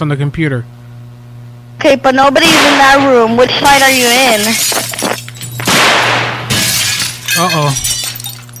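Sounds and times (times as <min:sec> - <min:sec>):
speech: 0:00.0 - 0:00.8, 0:01.8 - 0:05.1, 0:07.4 - 0:08.0
steady low electrical hum: 0:00.0 - 0:08.5
glass shattering: 0:03.6 - 0:08.5.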